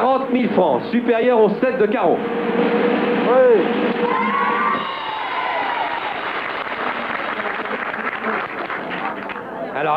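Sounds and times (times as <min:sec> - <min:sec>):
speech: 0:00.3 - 0:04.4, 0:09.8 - 0:09.9
studio audience applause and cheering at a card-guessing game show: 0:03.7 - 0:09.8.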